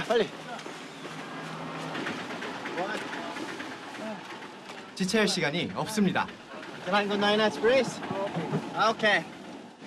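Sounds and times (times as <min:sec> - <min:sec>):
busy street noise: 0:00.0 - 0:09.8
small tuk-tuk engine running at high speed: 0:00.0 - 0:09.8
speech: 0:00.1 - 0:00.4, 0:05.0 - 0:09.4.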